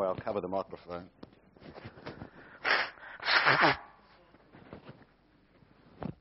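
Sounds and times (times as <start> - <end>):
speech: 0.0 - 1.3, 3.5 - 3.8
sniffing: 2.4 - 3.8
person blowing nose: 2.4 - 3.9.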